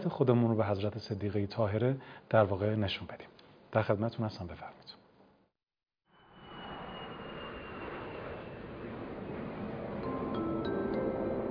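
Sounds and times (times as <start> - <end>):
speech: 0.0 - 5.0
passenger jet engines roaring as it lands: 6.1 - 11.4.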